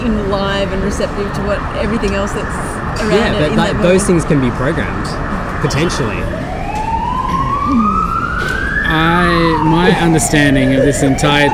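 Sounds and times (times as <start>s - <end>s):
speech: 0.0s - 6.4s, 8.9s - 11.5s
road noise: 0.0s - 11.5s
ambulance siren wailing and yelping: 0.4s - 11.5s.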